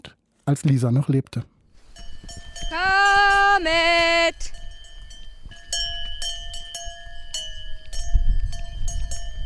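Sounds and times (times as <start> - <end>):
speech: 0.5 - 1.5
cowbells clanging on grazing cows on open pasture: 1.9 - 9.4.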